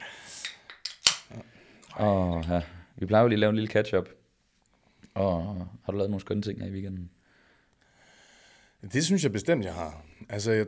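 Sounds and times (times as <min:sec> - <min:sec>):
soda can tab popping and fizzing: 0:00.2 - 0:01.3
soda can metallic clicks: 0:00.4 - 0:01.3
speech: 0:02.0 - 0:04.2, 0:05.2 - 0:07.2, 0:08.8 - 0:10.6.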